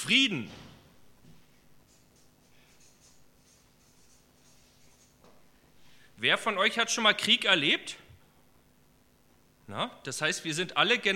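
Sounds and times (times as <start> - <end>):
speech: 0.0 - 0.6, 6.2 - 8.0, 9.7 - 11.1
low hum: 0.0 - 11.1
writing on a board: 1.8 - 5.4.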